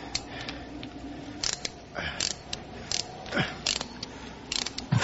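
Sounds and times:
ratchet wrench clicking on a car hose clamp: 1.4s - 4.9s.

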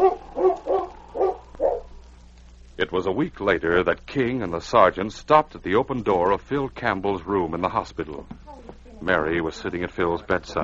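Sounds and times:
dog barking: 0.0s - 1.9s
speech: 2.8s - 8.4s, 9.0s - 10.6s.

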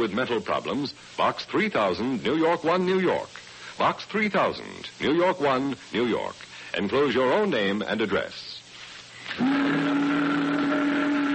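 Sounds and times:
speech: 0.0s - 8.5s, 9.3s - 9.8s
boat whistle single deep steady blast: 9.3s - 11.3s.

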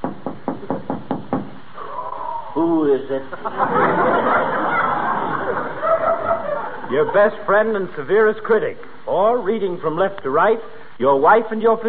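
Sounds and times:
firm knocking on a door: 0.0s - 1.6s
speech: 2.6s - 4.7s, 6.9s - 11.8s
laughter: 3.2s - 7.5s.

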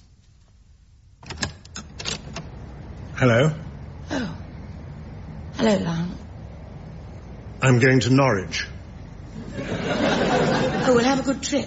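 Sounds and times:
front door hardware clicking and rattling as it is opened: 1.2s - 2.6s
speech: 3.2s - 4.4s, 5.6s - 6.2s, 7.6s - 8.7s, 10.9s - 11.6s
laughter: 9.3s - 11.4s.

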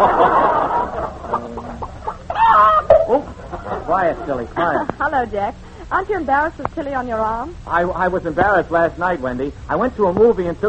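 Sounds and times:
speech: 0.0s - 1.2s, 3.9s - 10.6s
laughter: 0.0s - 5.0s
chicken squawking call: 2.3s - 3.0s.

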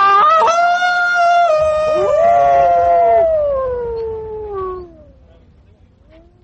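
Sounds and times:
wolf howling: 0.0s - 5.4s.

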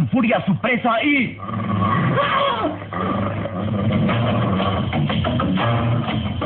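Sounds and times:
speech: 0.2s - 6.3s
wolves growling and snarling: 1.4s - 5.1s.

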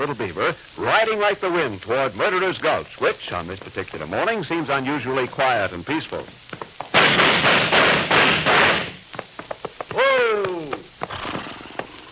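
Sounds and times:
speech: 0.0s - 7.5s
rushing broadband noise: 0.0s - 12.1s
gunshot cracks sound effect: 6.9s - 9.0s.

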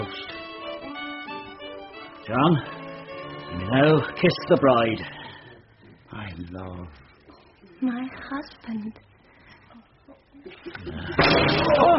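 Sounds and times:
speech: 2.3s - 2.8s, 3.5s - 5.2s, 6.4s - 7.0s, 7.8s - 9.1s, 10.4s - 11.9s
gunshot at a wedding ceremony: 11.2s - 11.9s.

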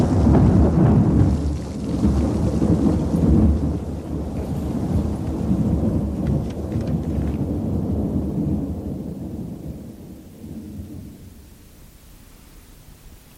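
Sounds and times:
heavy thunder crash after a lightning strike on a stormy night: 0.0s - 12.0s
steady rain: 0.0s - 13.3s.

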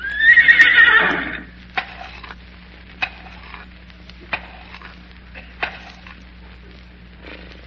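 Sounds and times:
horse whinnying loudly: 0.0s - 1.5s.

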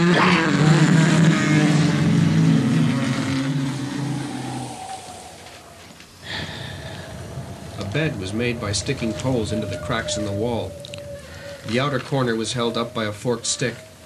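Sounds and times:
boat engine roaring at full throttle in fog: 0.0s - 14.0s
speech: 0.1s - 0.6s, 8.0s - 10.8s, 11.6s - 13.9s.

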